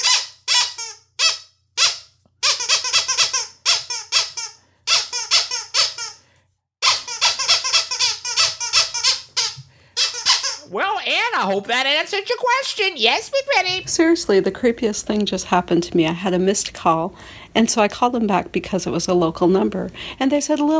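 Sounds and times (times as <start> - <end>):
squeaky toy squeaking: 0.0 - 6.2, 6.8 - 13.8
speech: 11.4 - 20.7.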